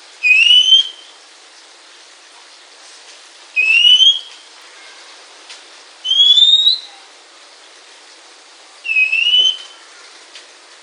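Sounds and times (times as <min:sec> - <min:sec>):
Oriental magpie-robin singing clear slightly rising whistles: 0:00.2 - 0:01.1, 0:03.6 - 0:04.4, 0:06.0 - 0:07.0, 0:08.8 - 0:09.8.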